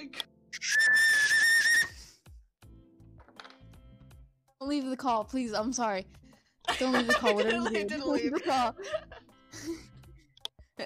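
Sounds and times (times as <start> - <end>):
loud piercing whistle blast: 0.6 - 1.9
speech: 4.6 - 6.2, 6.8 - 9.9
laughter: 6.7 - 9.9.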